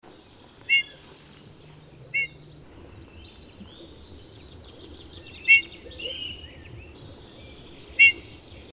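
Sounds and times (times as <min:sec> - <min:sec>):
steady background noise: 0:00.0 - 0:08.7
Eurasian bullfinch Pyrrhula pyrrhula soft piped calls: 0:00.6 - 0:04.0, 0:04.6 - 0:06.9, 0:07.6 - 0:08.4.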